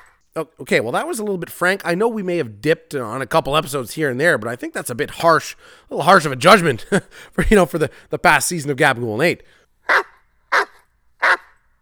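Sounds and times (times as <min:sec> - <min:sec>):
speech: 0:00.4 - 0:10.7
dog barking: 0:09.9 - 0:11.6.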